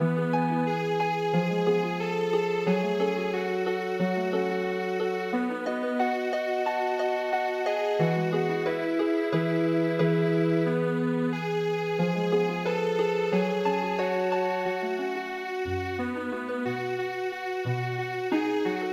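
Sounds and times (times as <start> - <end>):
healing harp lullaby: 0.0 - 18.8.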